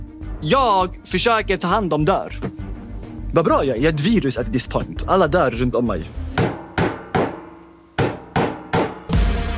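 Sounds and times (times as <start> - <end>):
speech: 0.4 - 2.6, 3.3 - 6.2
hammer strikes: 6.4 - 9.4.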